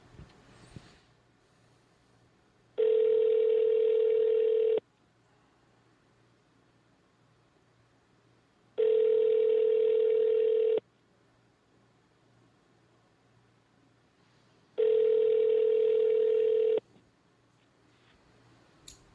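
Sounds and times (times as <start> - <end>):
outgoing call ringback tone over a phone line: 2.8 - 4.8, 8.8 - 10.8, 14.8 - 16.8.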